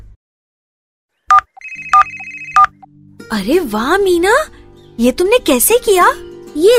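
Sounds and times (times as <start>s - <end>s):
mobile phone ringing with bright electronic chirps over a synthetic tone: 1.3s - 2.9s
speech: 3.3s - 6.7s.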